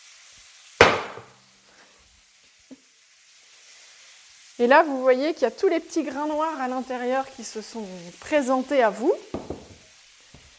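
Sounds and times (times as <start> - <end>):
saucepan bottom slamming onto wooden board crushing cardamom pods: 0.8 - 1.4, 9.3 - 9.8
speech: 4.6 - 9.4.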